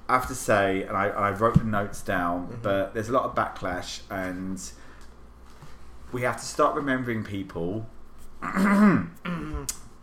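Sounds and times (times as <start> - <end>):
speech: 0.1 - 4.8, 6.1 - 9.8
throat clearing: 8.4 - 9.8.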